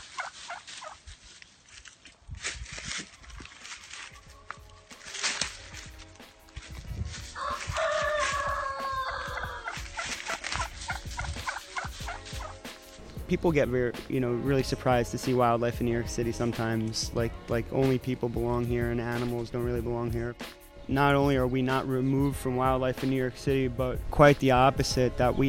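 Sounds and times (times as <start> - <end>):
turkeys gobbling: 0.0 - 1.2, 7.2 - 13.2
speech: 13.3 - 25.4.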